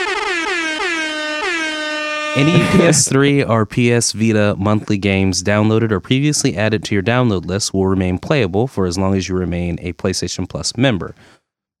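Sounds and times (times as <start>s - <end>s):
air horn sound effect blasts: 0.0s - 3.2s
laughter: 2.4s - 3.5s
speech: 2.4s - 11.7s.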